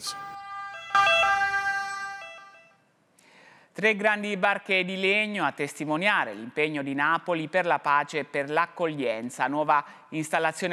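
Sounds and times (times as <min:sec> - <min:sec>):
ambulance siren with two-tone wail: 0:00.0 - 0:02.8
speech: 0:03.8 - 0:10.7.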